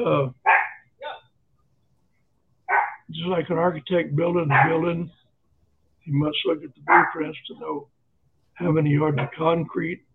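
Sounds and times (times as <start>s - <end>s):
speech: 0.0s - 0.4s, 3.1s - 5.2s, 6.1s - 7.9s, 8.6s - 10.1s
dog barking: 0.4s - 0.8s, 2.7s - 3.1s, 4.5s - 4.9s, 6.9s - 7.2s.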